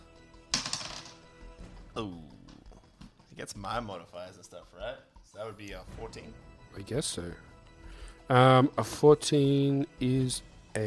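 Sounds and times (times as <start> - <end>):
dice clattering across a hard tabletop: 0.5 - 1.2
speech: 2.0 - 2.4, 3.4 - 7.5, 8.3 - 10.8.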